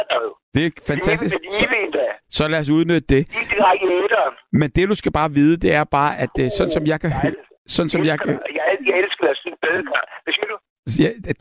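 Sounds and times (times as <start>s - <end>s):
voice over crackly narrow-sounding telephone connection: 0.0s - 2.3s, 3.3s - 4.5s, 6.2s - 10.7s
speech: 0.0s - 11.3s.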